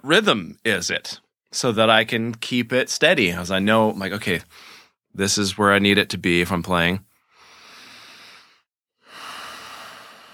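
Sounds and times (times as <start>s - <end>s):
speech: 0.0s - 7.1s
full steady breath: 4.5s - 5.0s, 7.2s - 10.3s.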